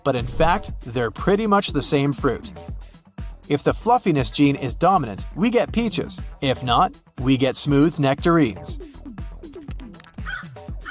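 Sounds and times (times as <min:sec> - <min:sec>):
speech: 0:00.0 - 0:08.9
crow cawing: 0:10.2 - 0:10.9.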